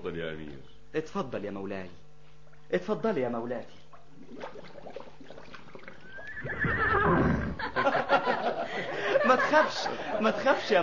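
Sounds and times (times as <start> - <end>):
speech: 0.0 - 2.1, 2.7 - 5.3, 9.2 - 10.8
horse neighing: 6.0 - 7.8
laughter: 6.9 - 10.8.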